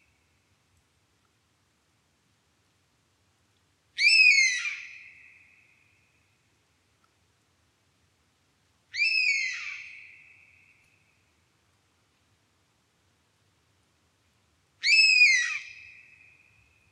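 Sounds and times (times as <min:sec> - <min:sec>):
European honey buzzard plaintive whistled call: 0:09.0 - 0:10.5, 0:14.8 - 0:16.2.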